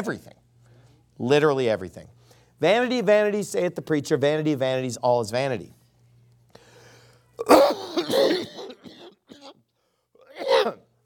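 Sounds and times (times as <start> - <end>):
speech: 0.0 - 0.4, 1.2 - 5.8
person clearing throat with phlegm: 7.4 - 9.6, 10.2 - 10.9
person coughing with phlegm from a lingering illness: 7.4 - 9.6, 10.2 - 10.9.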